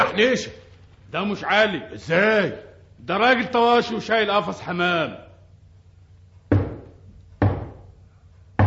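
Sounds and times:
speech: 0.2s - 5.2s
heavy knocking on a door: 6.5s - 7.9s.

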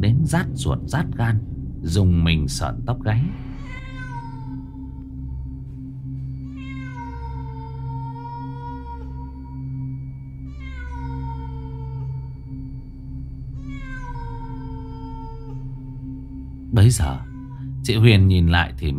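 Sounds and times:
steady low hum: 0.0s - 18.9s
speech: 0.3s - 3.8s, 16.8s - 18.9s
cat meowing outside: 3.6s - 5.0s, 6.4s - 9.4s, 10.4s - 12.2s, 13.6s - 15.7s, 16.8s - 17.7s.

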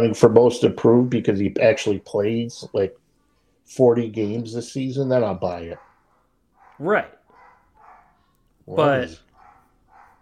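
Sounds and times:
speech: 0.0s - 3.0s, 3.7s - 5.9s, 6.8s - 7.2s, 8.7s - 9.2s
dog barking while playing with a puppy downstairs: 5.5s - 8.4s, 9.2s - 10.2s.

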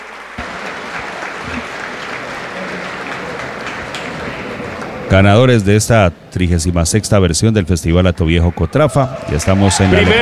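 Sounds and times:
audience applause for a festival winner: 0.0s - 5.1s, 8.4s - 10.2s
speech: 5.1s - 10.2s.

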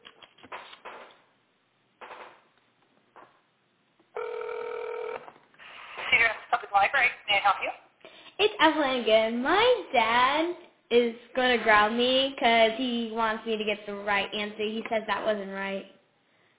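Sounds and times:
telephone number being dialed: 4.2s - 5.3s
speech: 7.0s - 7.8s, 8.4s - 16.0s.

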